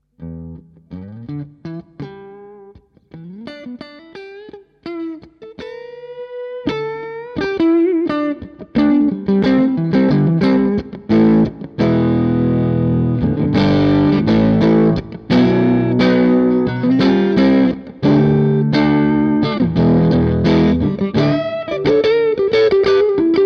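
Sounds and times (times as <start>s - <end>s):
Stratocaster electric guitar on neck pickup with more gain: 0.0s - 23.4s.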